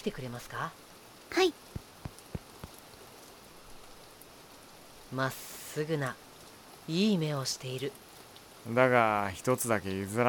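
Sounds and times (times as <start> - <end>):
speech: 0.0 - 1.8, 5.1 - 6.2, 6.9 - 8.0, 8.6 - 10.2
raindrops hitting a surface: 0.0 - 10.2.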